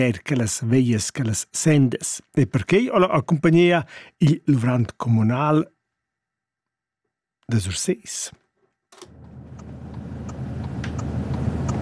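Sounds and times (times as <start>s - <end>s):
speech: 0.0s - 5.7s, 7.5s - 8.4s
car engine droning with a low rumbling hum: 9.1s - 11.8s.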